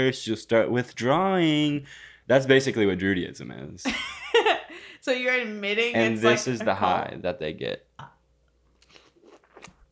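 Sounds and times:
speech: 0:00.0 - 0:04.2, 0:05.0 - 0:07.9
person biting and chewing a pear: 0:08.8 - 0:09.9.

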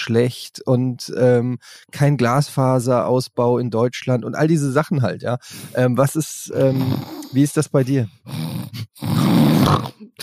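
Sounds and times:
speech: 0:00.0 - 0:10.2
voice imitating loud snoring of parents: 0:06.5 - 0:07.5, 0:08.2 - 0:10.2.

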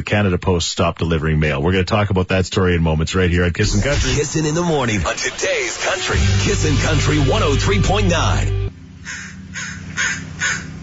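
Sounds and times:
speech: 0:00.0 - 0:09.2
low hum: 0:03.6 - 0:09.1
crow cawing: 0:09.0 - 0:10.8.

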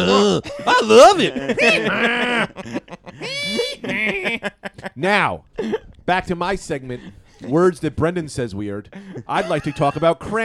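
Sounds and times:
man imitating a donkey bray: 0:00.0 - 0:02.6
laughter: 0:00.0 - 0:05.9, 0:08.9 - 0:10.4
speech: 0:00.0 - 0:10.4.

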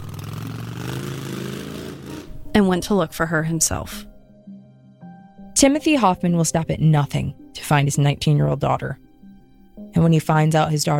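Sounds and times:
motorcycle engine revving with a throaty rumble: 0:00.0 - 0:02.5
speech: 0:02.6 - 0:04.1, 0:05.6 - 0:09.0, 0:10.0 - 0:10.9.

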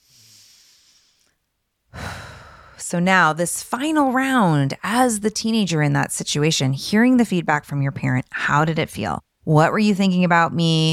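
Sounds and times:
breath taken: 0:00.0 - 0:02.8
speech: 0:02.9 - 0:10.9.

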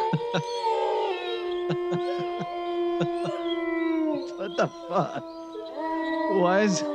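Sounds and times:
laughter: 0:00.0 - 0:00.6, 0:01.5 - 0:03.4, 0:04.4 - 0:05.2
wolf howl sound effect played from a soundboard: 0:00.0 - 0:06.9
speech: 0:00.1 - 0:00.8, 0:01.7 - 0:03.5, 0:04.4 - 0:05.5, 0:06.3 - 0:06.9.

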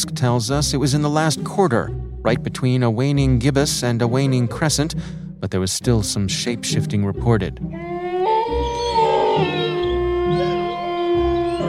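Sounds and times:
speech: 0:00.0 - 0:07.8, 0:09.4 - 0:09.6
chorus of wolves howling: 0:07.8 - 0:11.6.

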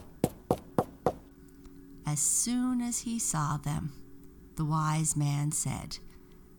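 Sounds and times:
knocking on a wooden door: 0:00.0 - 0:01.2
speech: 0:02.1 - 0:04.0, 0:04.6 - 0:06.1.

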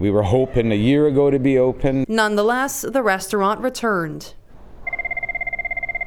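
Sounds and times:
speech: 0:00.0 - 0:04.4
telephone ringing with an electronic trill: 0:04.6 - 0:06.0.

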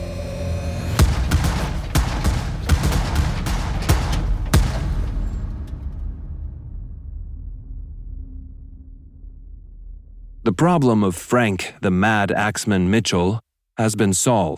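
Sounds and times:
low rumble: 0:00.0 - 0:10.8
muffled gunshots inside a van: 0:01.0 - 0:05.8
speech: 0:10.6 - 0:14.5.

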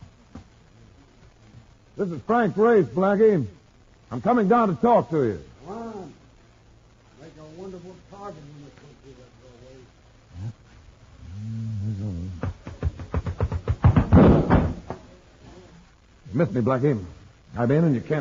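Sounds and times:
speech: 0:02.0 - 0:05.5, 0:16.4 - 0:18.1
door closing: 0:13.8 - 0:15.0.

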